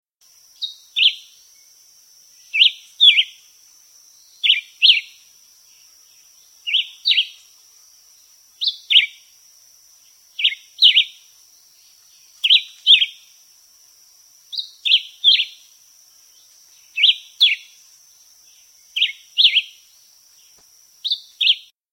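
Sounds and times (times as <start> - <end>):
Black whiskered Vireo calling: 0.6 - 1.4, 2.4 - 3.5, 4.3 - 5.3, 6.2 - 7.7, 8.6 - 9.3, 10.1 - 13.4, 14.4 - 21.7.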